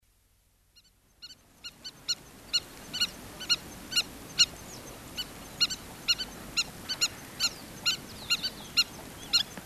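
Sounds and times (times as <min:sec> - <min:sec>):
faint background hiss: 0:00.0 - 0:09.6
Southern lapwing call: 0:00.8 - 0:09.6.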